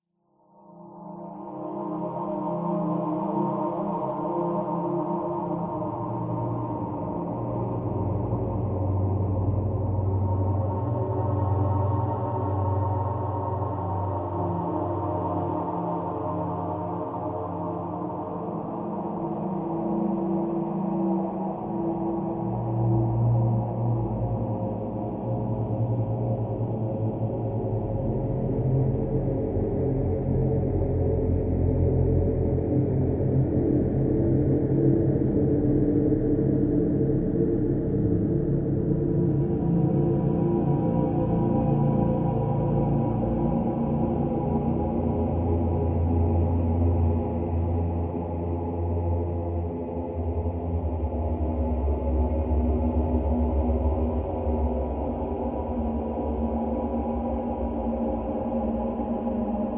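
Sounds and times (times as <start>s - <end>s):
eerie evolving horror texture drone: 1.0s - 59.7s.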